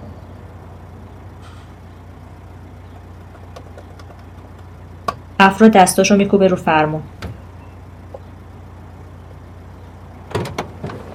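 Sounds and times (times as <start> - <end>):
steady low car engine hum: 0.0 - 11.1
speech: 5.4 - 7.2
car door opening and thumping as someone gets out of a car: 10.3 - 11.1.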